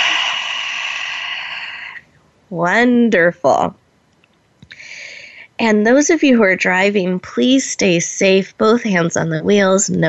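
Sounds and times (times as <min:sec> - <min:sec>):
deep breath: 0:00.0 - 0:02.1, 0:04.7 - 0:05.4
speech: 0:02.5 - 0:03.8, 0:05.6 - 0:10.0.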